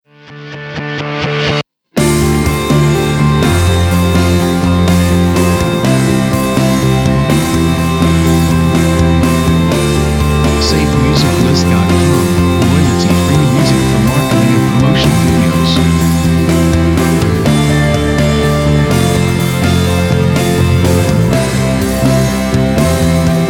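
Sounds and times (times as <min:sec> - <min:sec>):
energetic uplifting rock opener music: 0:00.3 - 0:23.4.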